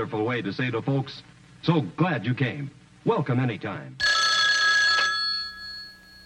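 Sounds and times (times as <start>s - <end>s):
speech: 0.0s - 4.0s
telephone bell ringing: 4.0s - 6.2s.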